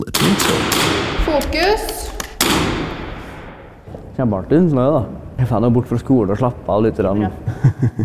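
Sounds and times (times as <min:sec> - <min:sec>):
rifle shots during school shooting practice: 0:00.2 - 0:03.8
speech: 0:01.3 - 0:02.1, 0:04.2 - 0:08.0
laughter: 0:07.3 - 0:08.0.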